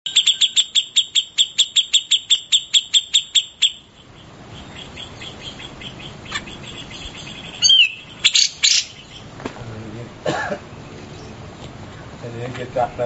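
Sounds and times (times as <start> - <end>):
Grey-cheeked bulbul song: 0.1 - 9.4.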